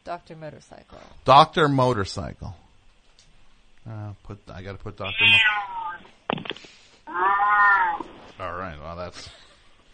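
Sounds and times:
speech: 0:00.1 - 0:02.6, 0:03.9 - 0:09.4
cat meowing while sitting on a chair: 0:05.0 - 0:06.1, 0:07.1 - 0:08.2.

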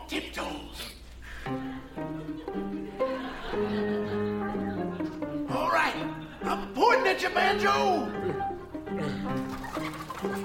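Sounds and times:
laughter: 0:01.4 - 0:06.8, 0:08.0 - 0:10.4
speech: 0:07.2 - 0:08.3
hen squawking and clucking: 0:09.2 - 0:10.4.

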